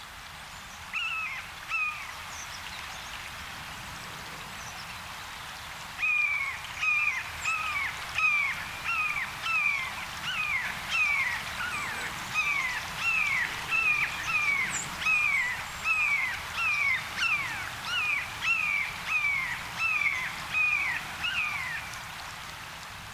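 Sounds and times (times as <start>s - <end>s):
blue jays mimicking red-shouldered hawk calls: 6.0s - 21.8s.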